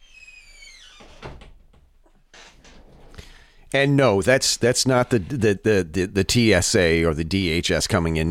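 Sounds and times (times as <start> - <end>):
door creaking and closing with a solid thud: 0.0 - 3.3
rustling and shuffling: 1.3 - 3.4
speech: 3.7 - 8.2.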